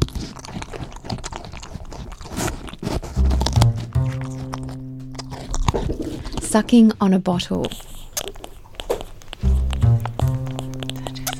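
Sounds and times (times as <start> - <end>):
wombat crunching on carrots: 0.0 - 11.3
low sustained music notes: 3.2 - 5.8, 9.4 - 11.3
speech: 6.6 - 7.9.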